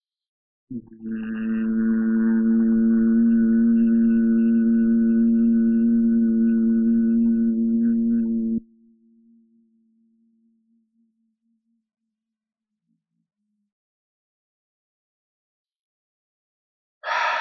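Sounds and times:
low closed-lip humming after a deep breath: 0.7 - 8.6.

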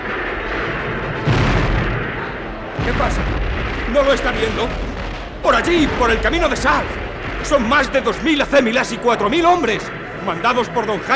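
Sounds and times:
cannon fire from artillery batteries on the city walls of Gerona: 0.0 - 10.2
speech: 2.9 - 11.1.

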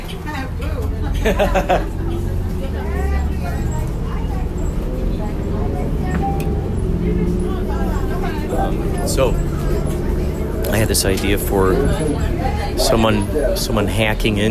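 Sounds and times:
city bus at Glendale Station idling with engine rumble: 0.0 - 14.4
several passengers chattering in a busy murmur: 0.0 - 14.4
laughter: 0.9 - 3.6
speech: 1.2 - 2.0, 8.6 - 9.6, 10.7 - 14.4.

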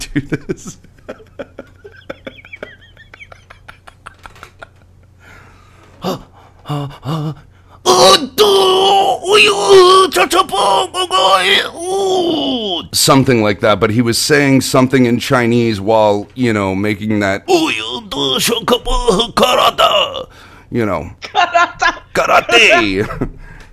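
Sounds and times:
laughter: 0.0 - 5.1, 21.2 - 23.4
speech: 0.2 - 1.5, 6.7 - 7.4, 12.9 - 23.4
man's voice imitating climax moaning with grunts and groans: 6.0 - 12.9, 17.5 - 20.4.

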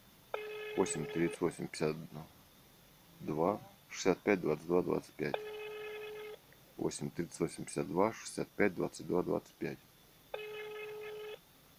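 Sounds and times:
telephone dialing tone beep: 0.4 - 1.4, 5.4 - 6.4, 10.4 - 11.4
speech: 0.8 - 2.4, 3.2 - 5.5, 6.8 - 9.9.

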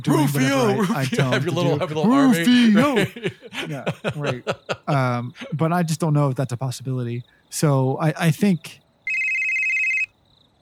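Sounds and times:
laughter: 0.0 - 5.6
speech: 0.0 - 8.8
quiet hiss: 0.0 - 9.6
flip phone ringing with an electronic trill: 9.1 - 10.1.

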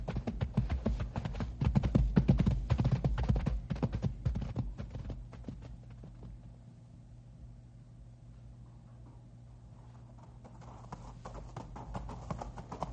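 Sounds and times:
horses' hooves clip-clopping on rocky trail with loose rock: 0.0 - 6.5, 10.2 - 12.9.

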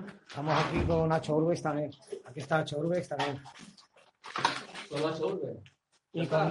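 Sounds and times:
speech: 0.4 - 3.7, 4.9 - 6.4
door swinging shut with a sharp thud: 0.6 - 1.2.

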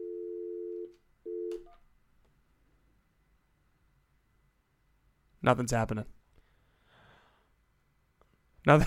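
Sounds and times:
telephone speakerphone dial tone: 0.0 - 1.6
speech: 5.4 - 6.2, 8.7 - 8.8.

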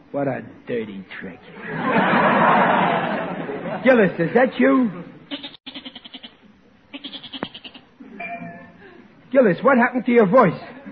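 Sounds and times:
speech: 0.1 - 5.4, 9.4 - 10.7
laughter: 1.5 - 4.4
goat bleating: 5.3 - 7.9.

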